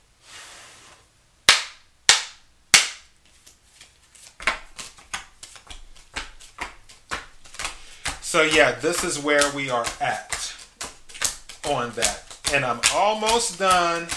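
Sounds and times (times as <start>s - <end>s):
deck of tarot cards being shuffled: 3.2s - 14.1s
speech: 8.3s - 10.3s, 11.7s - 14.1s.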